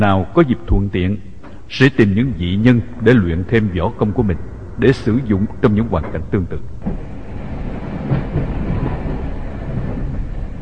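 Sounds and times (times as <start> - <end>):
speech: 0.0 - 7.1
train pulling away with a low rumble: 0.0 - 10.6
faint rolling clatter of a train: 2.4 - 10.6.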